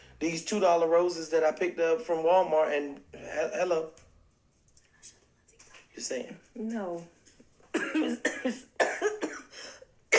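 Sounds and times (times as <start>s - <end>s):
speech: 0.2s - 4.0s, 6.0s - 7.2s, 8.0s - 9.0s
harsh rasping coughing fit: 7.7s - 10.1s.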